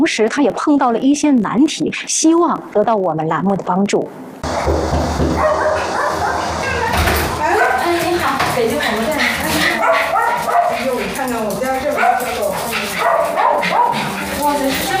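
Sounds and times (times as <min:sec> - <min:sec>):
speech: 0:00.0 - 0:06.0
six rescued dogs barking and yipping at the door of a home: 0:04.4 - 0:14.9
voices of arriving visitors: 0:06.7 - 0:14.9.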